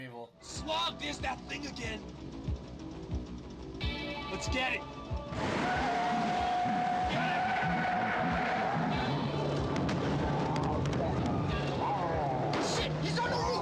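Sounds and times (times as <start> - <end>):
speech: 0.0 - 2.4, 4.3 - 6.4
video game car engine roaring: 0.5 - 13.6
video game car tires squealing and skidding: 5.3 - 12.8.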